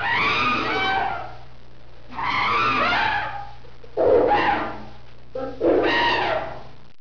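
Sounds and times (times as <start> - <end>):
monkey screaming: 0.0 - 1.4, 2.1 - 5.0, 5.6 - 6.7.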